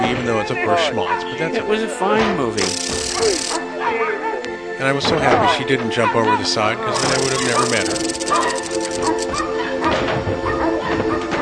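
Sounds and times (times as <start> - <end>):
speech: 0.3 - 9.3
several dogs barking and yipping: 0.6 - 1.5, 2.6 - 4.4, 6.0 - 11.4.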